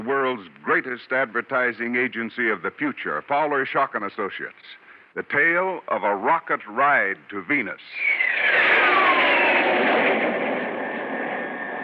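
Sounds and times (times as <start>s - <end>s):
speech: 0.0s - 8.4s
cargo jet engine roar: 7.9s - 11.8s.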